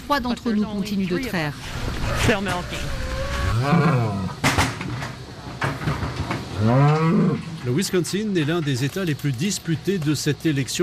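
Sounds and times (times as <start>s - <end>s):
speech: 0.1s - 5.1s, 6.6s - 10.8s
dairy cows mooing inside a small barn in Wisconsin: 2.0s - 4.4s, 6.6s - 7.5s.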